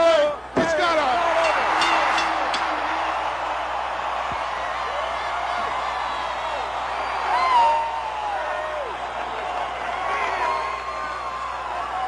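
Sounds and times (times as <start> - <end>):
capacity arena crowd at a professional wrestling match in Minneapolis roaring and cheering: 0.0 - 12.0
crowd whistles and whoops: 4.3 - 9.0, 10.2 - 12.0.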